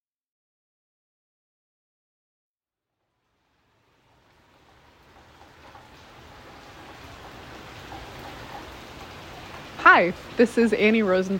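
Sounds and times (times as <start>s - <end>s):
steady rain hissing, heard from under an awning: 2.9s - 11.3s
faint drips: 3.6s - 11.3s
speech: 9.9s - 11.3s.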